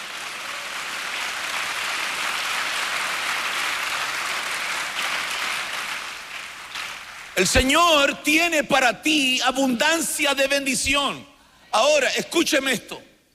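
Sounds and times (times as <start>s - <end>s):
large crowd applauding: 0.0s - 7.6s
speech: 7.4s - 13.1s.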